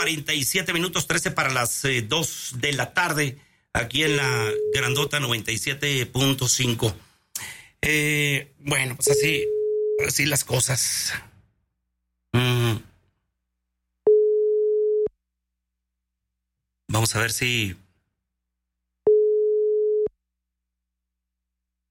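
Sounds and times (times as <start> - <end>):
speech: 0.0 - 11.3, 17.1 - 17.8
steady single-pitch telephone ringback tone: 9.1 - 10.0, 14.1 - 15.1, 19.1 - 20.1.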